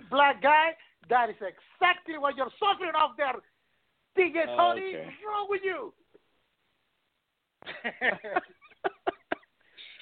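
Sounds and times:
speech: 0:00.1 - 0:03.5, 0:04.2 - 0:06.0, 0:07.6 - 0:09.0
person laughing: 0:07.6 - 0:10.0.

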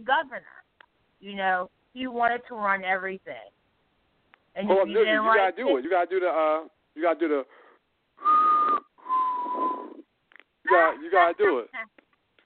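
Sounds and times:
speech: 0:00.0 - 0:03.6, 0:04.6 - 0:07.6, 0:10.7 - 0:11.9
person whistling: 0:08.2 - 0:10.0.

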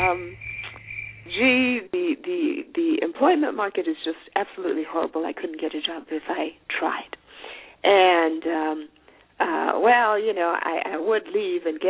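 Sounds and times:
brief tonal fragments: 0:00.0 - 0:01.4
crickets chirping in a high-pitched trill: 0:00.0 - 0:01.6
speech: 0:00.1 - 0:00.5, 0:01.3 - 0:07.2, 0:07.8 - 0:11.8.

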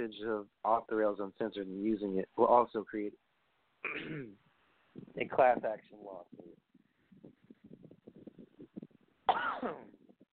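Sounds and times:
speech: 0:00.0 - 0:04.4, 0:05.0 - 0:06.6, 0:09.3 - 0:10.0
heavy harsh rasping cough: 0:03.9 - 0:04.4, 0:09.3 - 0:09.9.

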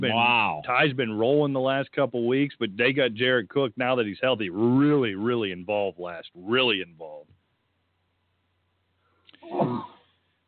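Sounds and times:
speech: 0:00.0 - 0:07.3, 0:09.4 - 0:09.9
sneeze: 0:09.4 - 0:10.0.

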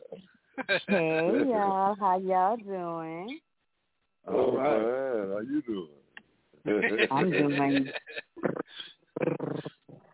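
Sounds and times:
laughter: 0:00.6 - 0:01.5, 0:06.7 - 0:08.3
speech: 0:00.6 - 0:03.4, 0:04.2 - 0:06.0, 0:06.6 - 0:08.2
phone-in caller imitating a cat's purr with their voice: 0:04.3 - 0:05.3, 0:08.4 - 0:10.1.

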